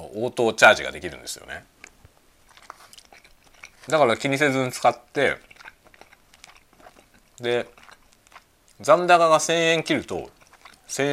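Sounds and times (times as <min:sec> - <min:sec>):
speech: 0:00.2 - 0:01.8, 0:03.9 - 0:05.5, 0:07.4 - 0:07.8, 0:08.8 - 0:11.1
person chewing a convenience-store boxed lunch: 0:01.7 - 0:11.1.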